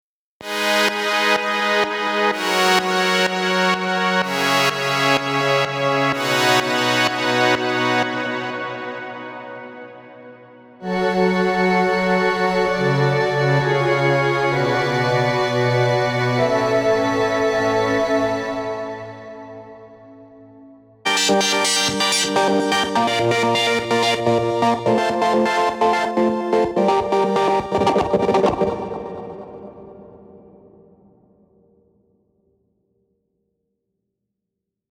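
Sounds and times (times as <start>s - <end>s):
melodic techno chord progression: 0.4s - 30.4s.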